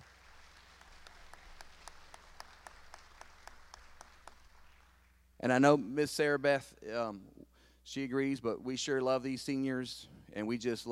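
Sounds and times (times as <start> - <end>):
audience applause in a reverberant room: 0.0 - 5.0
speech: 5.4 - 10.8.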